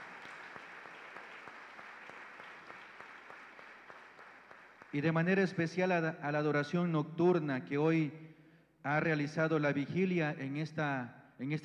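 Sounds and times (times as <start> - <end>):
crowd clapping in a large room: 0.0 - 5.4
speech: 4.9 - 11.6.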